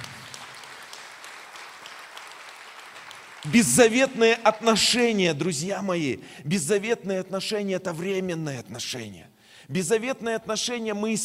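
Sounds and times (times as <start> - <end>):
church audience applauding: 0.0 - 4.6
speech: 3.4 - 11.2.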